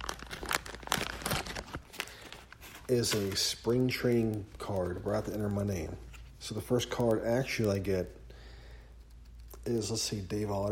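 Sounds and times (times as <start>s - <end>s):
foil wrapper of a baseball trading card pack tearing open: 0.0s - 4.4s
speech: 2.9s - 8.2s, 9.7s - 10.7s.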